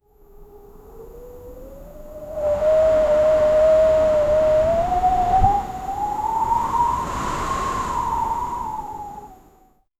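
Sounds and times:
wind blowing: 2.2 - 9.5.

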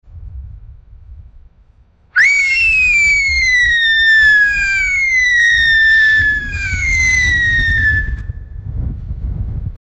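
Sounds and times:
police officer blowing whistle: 2.2 - 8.3.

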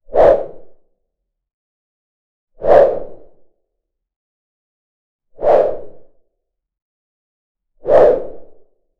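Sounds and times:
low-pitched longsword whoosh: 0.1 - 0.7, 2.6 - 3.4, 5.4 - 6.1, 7.8 - 8.6.

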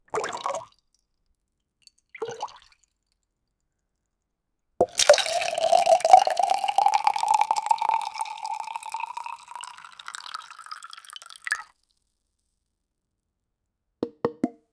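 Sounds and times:
water pouring from a water bottle: 4.8 - 11.6.

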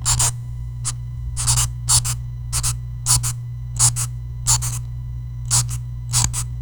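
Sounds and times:
marker marking in an office: 0.1 - 0.3, 0.9 - 4.8, 5.5 - 6.5.

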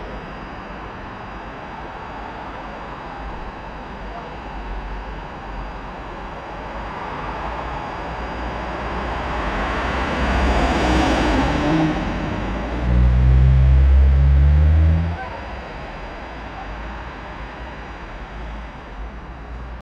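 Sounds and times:
car: 7.1 - 19.8
city traffic: 8.8 - 15.5
people: 12.7 - 15.6.

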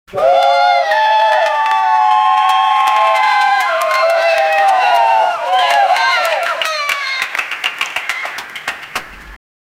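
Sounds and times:
crowd cheering: 0.1 - 9.3.

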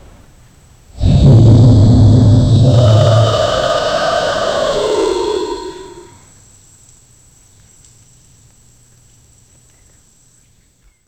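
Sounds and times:
dragon roaring: 1.0 - 6.2.

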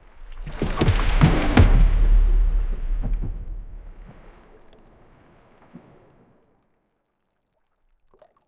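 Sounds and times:
sea waves crashing: 0.0 - 6.1.

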